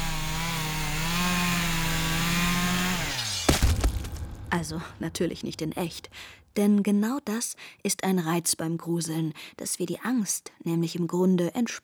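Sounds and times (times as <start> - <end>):
chainsaw engine droning: 0.0 - 5.2
speech: 4.5 - 11.8.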